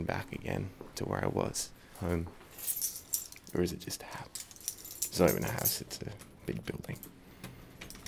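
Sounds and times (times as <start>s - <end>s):
speech: 0.0s - 2.9s, 3.5s - 4.5s, 5.2s - 7.2s
keys jangling in a door lock: 2.6s - 3.6s, 4.2s - 6.3s.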